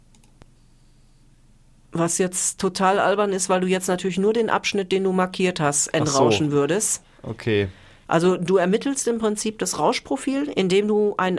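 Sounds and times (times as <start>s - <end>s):
computer mouse click: 0.0s - 0.5s
low steady hum: 0.0s - 11.3s
speech: 2.0s - 11.3s.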